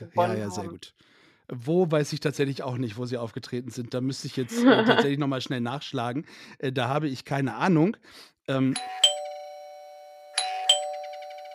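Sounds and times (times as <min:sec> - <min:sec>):
speech: 0:00.0 - 0:09.1
laughter: 0:04.4 - 0:05.2
two-tone doorbell chiming: 0:08.8 - 0:11.5.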